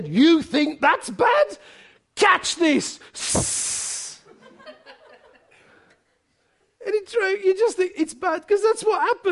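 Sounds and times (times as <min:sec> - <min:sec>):
speech: 0:00.0 - 0:03.8, 0:06.8 - 0:09.3
person hissing in imitation of a snake: 0:03.2 - 0:04.2
laughter: 0:04.2 - 0:06.3.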